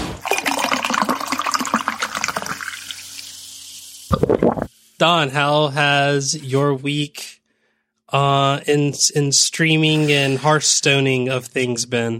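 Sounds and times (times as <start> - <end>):
drink being poured into a glass: 0.2 - 3.4
fizzing trickle of drink: 0.2 - 4.7
speech: 5.0 - 7.3, 8.1 - 12.1.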